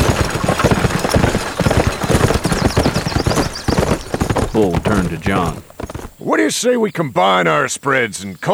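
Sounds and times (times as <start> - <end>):
rattle and rumble of wheeled buggies: 0.0 - 6.2
several horses clip-clopping: 0.0 - 6.3
speech: 4.6 - 5.7, 6.3 - 8.5.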